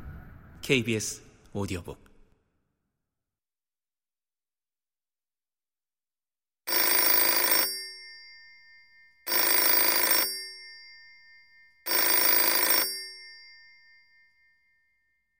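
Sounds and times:
speech: 0.7 - 2.1
brassy telephone bell ringing: 6.7 - 15.3.

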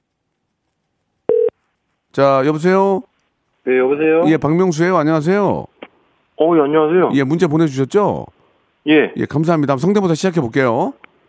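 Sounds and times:
short electronic telephone tone as a call is placed: 1.3 - 1.5
speech: 2.2 - 5.7, 6.4 - 11.1.

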